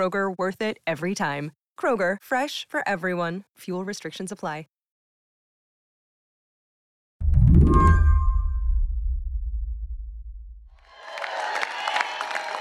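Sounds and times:
speech: 0.0 - 4.8
deep booming hit with a ringing tone: 7.2 - 10.8
crowd applauding and cheering at a caucus victory event: 10.8 - 12.5.

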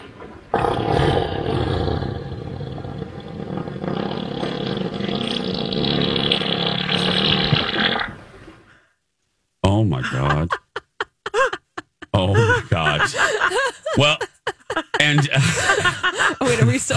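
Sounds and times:
elephant fart: 0.0 - 8.6
speech: 10.0 - 10.6, 14.0 - 14.3
laughter: 10.0 - 16.9.

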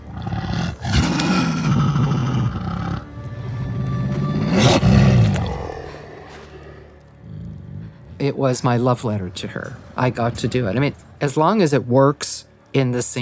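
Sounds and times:
wolf pack sound effect built from one dog's vocalizations: 0.0 - 8.2
speech: 8.2 - 13.2.

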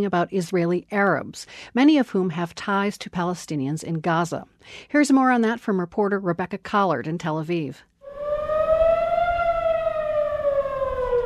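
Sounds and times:
speech: 0.0 - 7.9
civil defense siren wailing in a city: 8.0 - 11.2.

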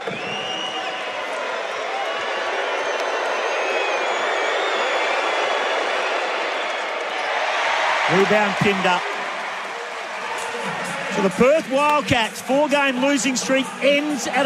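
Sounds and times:
whistles in a basketball arena crowd: 0.0 - 1.4, 2.0 - 7.1
huge basketball arena crowd cheering and shouting after a three-point shot: 0.0 - 14.4
speech: 8.1 - 9.1, 11.2 - 14.4.

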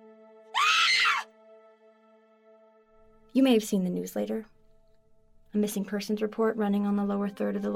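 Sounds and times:
shrill human scream: 0.6 - 1.3
speech: 3.4 - 4.6, 5.5 - 7.7.

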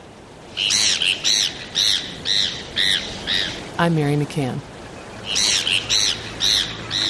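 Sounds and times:
Heermann's gulls squawking: 0.6 - 3.7, 5.0 - 7.0
speech: 3.8 - 4.7.

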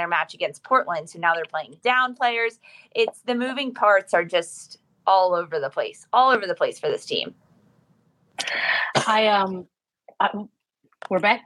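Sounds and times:
speech: 0.0 - 7.4, 8.4 - 11.4
person coughing in two hacking bursts: 8.4 - 9.3.

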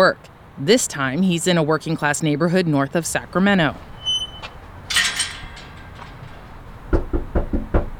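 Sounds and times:
speech: 0.0 - 3.9
light metallic clatter: 3.2 - 7.8
canvasser knocking on a front door: 6.9 - 7.9.

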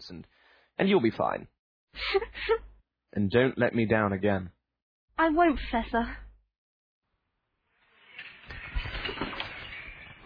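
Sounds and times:
speech: 0.1 - 4.6, 5.2 - 6.2
owl fluttering and rustling its wings swooping toward a table: 8.0 - 10.2.

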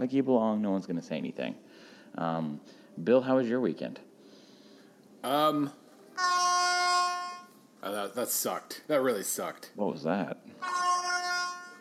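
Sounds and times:
speech: 0.0 - 4.1, 5.2 - 6.4, 7.8 - 10.8
loud air horn blast: 6.2 - 7.6, 10.6 - 11.7.

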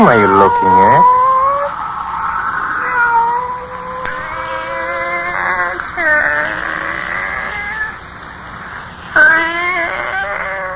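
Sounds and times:
speech: 0.0 - 1.2
pet cat meowing in long wavering cries: 0.0 - 1.7, 2.7 - 8.0, 9.1 - 10.7
faint steady hum: 0.0 - 10.7.

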